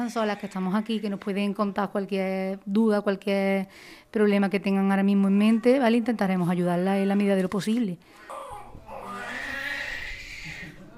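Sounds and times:
speech: 0.0s - 8.3s
newborn baby crying in a strained wail: 8.2s - 10.8s.

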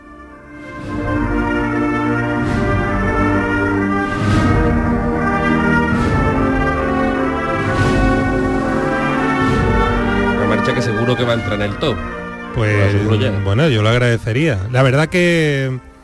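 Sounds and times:
band playing a processional march dedicated to a religious brotherhood: 0.0s - 16.0s
sustained full brass chords: 0.0s - 16.0s
heavy drum strokes: 0.6s - 13.4s
speech: 11.2s - 15.9s.

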